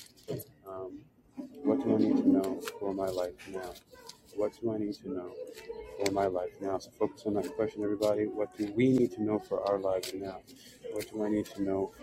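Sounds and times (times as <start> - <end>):
Angel Tarot cards being shuffled quickly: 1.8 - 4.6, 5.4 - 6.4, 7.1 - 12.0
speech: 1.8 - 12.0.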